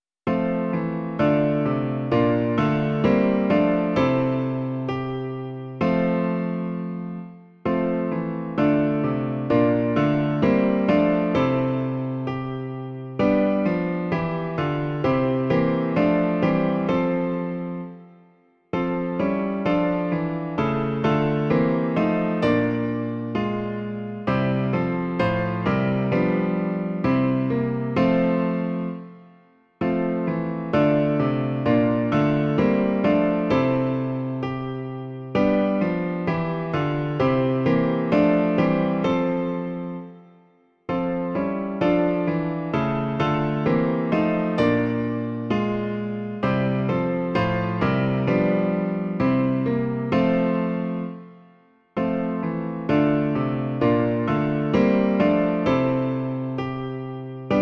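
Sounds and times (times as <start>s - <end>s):
piano version of a hymn: 0.0s - 57.6s.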